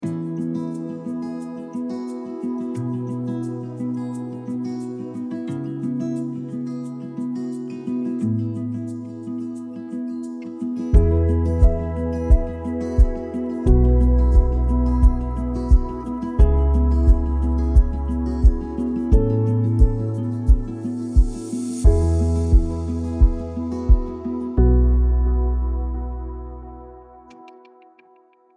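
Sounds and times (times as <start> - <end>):
uplifting acoustic music: 0.0 - 28.0.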